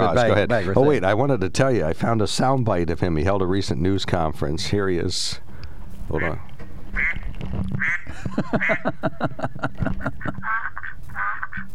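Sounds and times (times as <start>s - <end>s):
laughter: 0.0s - 0.9s, 8.1s - 10.5s
speech: 0.1s - 5.4s, 6.1s - 11.7s
duck quacking: 7.0s - 7.2s, 7.8s - 8.8s, 10.2s - 11.7s.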